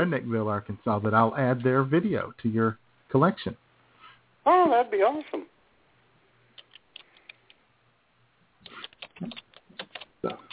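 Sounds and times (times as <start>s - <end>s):
speech: 0.0s - 3.6s, 4.4s - 5.5s, 9.2s - 9.4s, 10.2s - 10.5s
typing on a computer keyboard: 8.7s - 10.5s.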